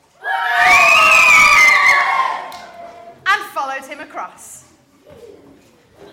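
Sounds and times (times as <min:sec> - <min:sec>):
crowd of children cheering and whooping: 0:00.2 - 0:03.0.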